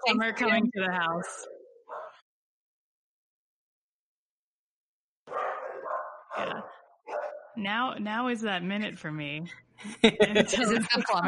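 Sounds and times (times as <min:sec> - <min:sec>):
speech: 0:00.0 - 0:01.5, 0:06.4 - 0:06.8, 0:07.6 - 0:11.2
laughter: 0:00.1 - 0:00.7, 0:09.8 - 0:11.2
dogs barking: 0:01.4 - 0:02.2, 0:05.3 - 0:07.6.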